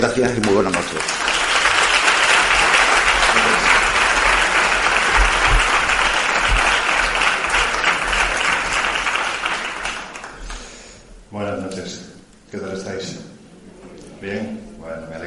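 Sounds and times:
speech: 0:00.0 - 0:01.4
sizeable audience applauding a speaker at an evening talk: 0:00.0 - 0:10.8.

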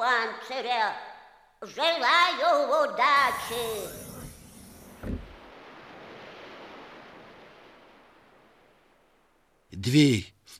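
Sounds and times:
speech: 0:00.2 - 0:04.1, 0:09.8 - 0:10.5
waves washing onto the shore of an icy sea lined with grey stones and rocks: 0:03.2 - 0:09.7.

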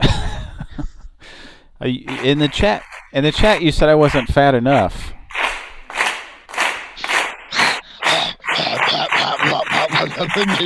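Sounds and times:
laughter: 0:00.0 - 0:01.1, 0:01.9 - 0:03.4, 0:07.0 - 0:10.6
speech: 0:01.8 - 0:05.2, 0:10.2 - 0:10.6
hands clapping very fast: 0:01.9 - 0:10.6.

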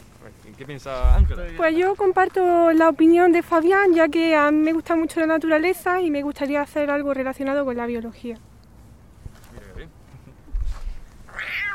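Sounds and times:
speech: 0:00.2 - 0:08.5
low rumbling: 0:00.9 - 0:01.7
cat meowing in a park beside railway tracks: 0:11.3 - 0:11.7.

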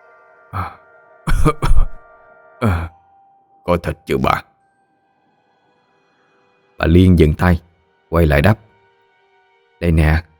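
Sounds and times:
speech: 0:00.5 - 0:00.8, 0:01.4 - 0:01.9, 0:03.7 - 0:04.5, 0:06.8 - 0:08.7, 0:09.8 - 0:10.3
man coughing and clearing his throat outside: 0:01.3 - 0:02.0, 0:02.6 - 0:03.0.

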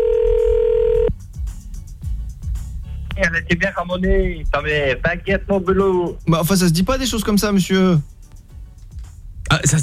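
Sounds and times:
telephone dial tone: 0:00.0 - 0:01.1
speech: 0:03.4 - 0:08.1, 0:09.6 - 0:09.8.

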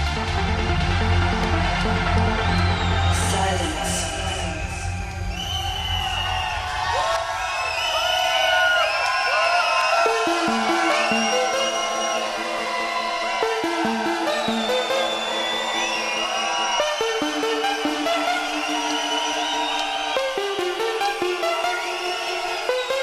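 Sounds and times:
crowd screaming and cheering at a techno event: 0:00.0 - 0:23.0.

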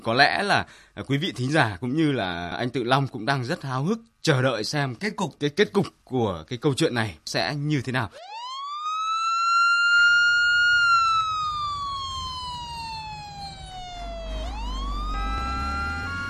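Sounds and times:
speech: 0:00.0 - 0:08.3
ambulance siren wailing: 0:08.2 - 0:16.2
low vehicle rumble: 0:10.6 - 0:16.2.

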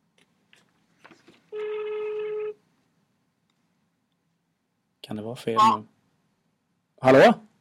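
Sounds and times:
telephone ringing tone: 0:01.5 - 0:02.6
speech: 0:05.1 - 0:05.9, 0:07.0 - 0:07.5.

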